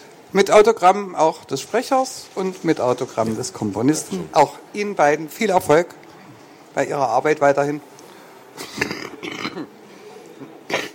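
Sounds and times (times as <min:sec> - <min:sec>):
speech: 0:00.3 - 0:06.0, 0:06.8 - 0:07.9
person coughing: 0:08.6 - 0:09.7, 0:10.7 - 0:10.9.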